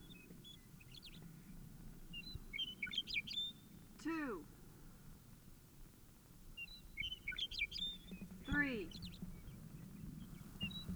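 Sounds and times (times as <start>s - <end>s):
bird giving short high chirps and tweets: 2.1s - 3.7s, 6.6s - 10.9s.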